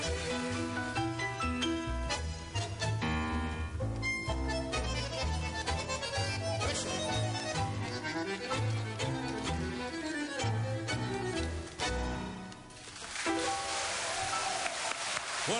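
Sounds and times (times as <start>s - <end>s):
live típica orchestra playing a tango at a 20th birthday party: 0.0s - 12.6s
crowd applauding after a tango performance: 12.8s - 15.5s.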